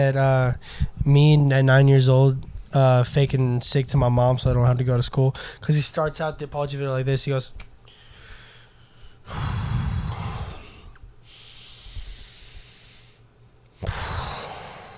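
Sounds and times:
speech: 0:00.0 - 0:07.7, 0:09.3 - 0:09.6
person imitating heavy breathing: 0:09.2 - 0:13.1, 0:13.8 - 0:14.9.

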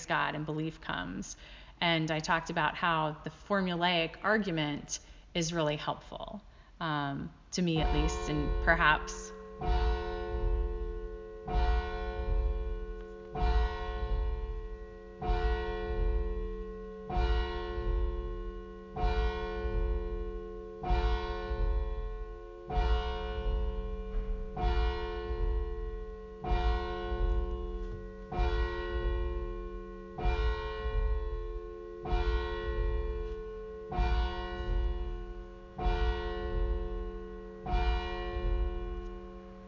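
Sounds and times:
speech: 0:00.1 - 0:10.0
church bell tolling: 0:07.7 - 0:39.6.

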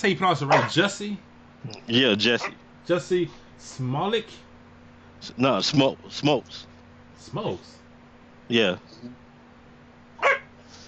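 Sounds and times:
speech: 0:00.0 - 0:04.4, 0:05.2 - 0:07.8, 0:08.5 - 0:09.2
quiet hum: 0:00.0 - 0:10.8
dog barking: 0:00.5 - 0:00.8, 0:10.2 - 0:10.5.

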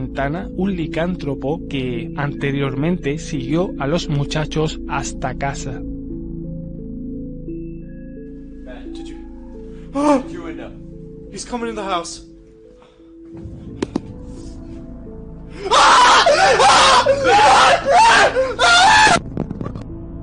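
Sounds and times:
speech: 0:00.1 - 0:05.9, 0:10.0 - 0:12.3
people screaming in terror: 0:15.6 - 0:19.2.

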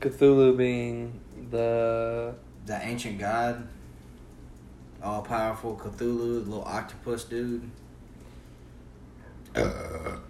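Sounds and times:
speech: 0:00.0 - 0:03.8, 0:05.0 - 0:07.8, 0:09.6 - 0:10.2
throaty burp: 0:09.4 - 0:10.2.

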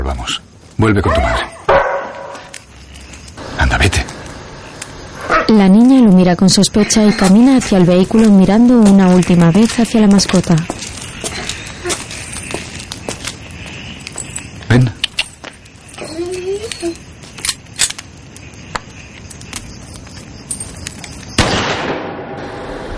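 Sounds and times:
speech: 0:00.1 - 0:01.5, 0:05.5 - 0:10.8
faint clinks outdoors: 0:10.8 - 0:18.0, 0:19.3 - 0:21.3
single sharp loud gunshot: 0:21.4 - 0:22.7.

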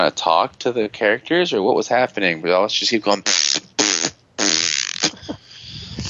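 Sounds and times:
speech: 0:00.0 - 0:03.7
girl blowing wet raspberry sputters mimicking an explosion: 0:03.3 - 0:06.0.

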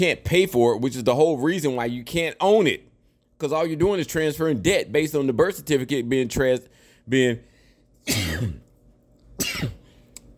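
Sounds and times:
speech: 0:00.0 - 0:08.6, 0:09.4 - 0:09.8
person sneezing: 0:08.0 - 0:08.7, 0:09.4 - 0:10.0.

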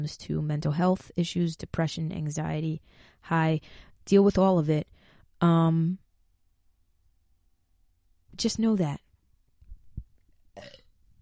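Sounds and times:
speech: 0:00.0 - 0:06.0, 0:08.4 - 0:09.0
low burp: 0:10.5 - 0:11.0.

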